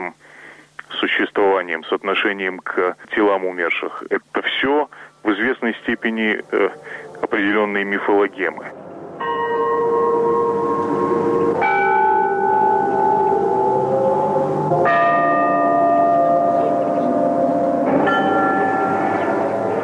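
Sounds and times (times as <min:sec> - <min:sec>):
speech: 0:01.0 - 0:08.8
Gethsemane church bells ringing: 0:05.3 - 0:19.8.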